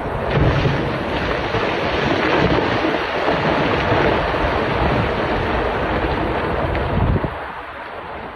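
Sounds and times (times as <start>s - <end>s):
multi-ton boulders tumbling down a mountain in a rockfall and shattering: 0.0s - 8.3s.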